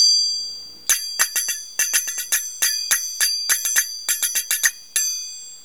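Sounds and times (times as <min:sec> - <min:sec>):
thin zills: 0:00.9 - 0:05.2.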